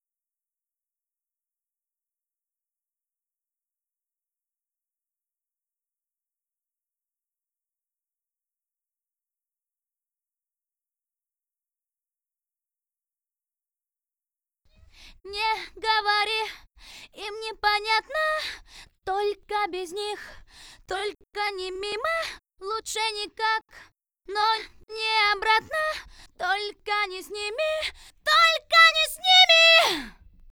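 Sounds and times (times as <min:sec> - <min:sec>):
mixed a cappella vocal couplet: 0:14.8 - 0:30.2.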